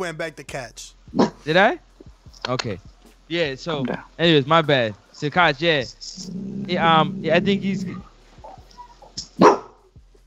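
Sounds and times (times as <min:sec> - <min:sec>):
speech: 0:00.0 - 0:08.1
dog barking sharply: 0:08.5 - 0:09.8.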